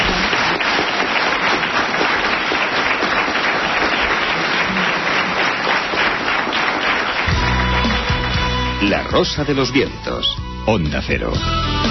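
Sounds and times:
audience applause at the close of a talk gathering: 0.0s - 9.3s
speech: 9.2s - 11.8s.

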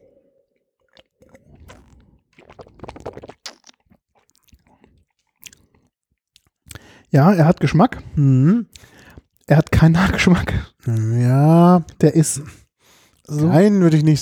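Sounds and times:
person sipping and slurping spring wine: 0.8s - 9.5s
mouth smacks from tasting wine: 0.9s - 8.1s, 8.7s - 9.8s
speech: 7.1s - 8.8s, 9.5s - 12.6s, 13.3s - 14.1s.

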